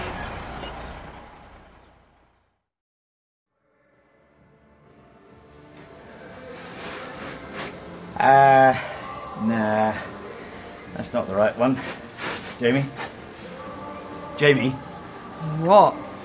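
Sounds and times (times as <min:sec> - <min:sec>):
lorry engine rumble approaching: 0:00.0 - 0:02.3
speech: 0:08.2 - 0:10.1, 0:11.0 - 0:12.0, 0:12.6 - 0:13.1, 0:14.4 - 0:14.8, 0:15.4 - 0:16.0.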